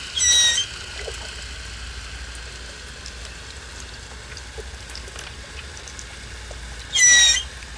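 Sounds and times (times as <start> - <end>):
West Indian manatee squeaking: 0.1 - 0.8, 6.9 - 7.6.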